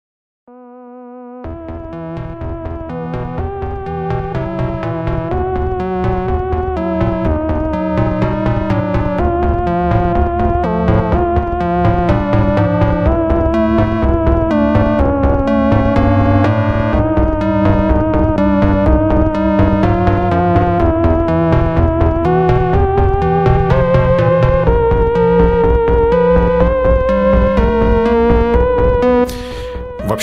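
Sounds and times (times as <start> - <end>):
dungeon synth music with bright 80s dance synthesizers over a droning ambient bed: 0.5 - 30.2.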